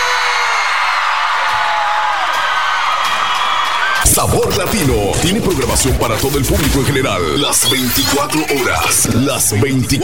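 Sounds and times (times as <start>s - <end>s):
whoops: 0.0s - 4.0s
large crowd shouting and cheering: 0.0s - 10.0s
speech: 4.3s - 10.0s.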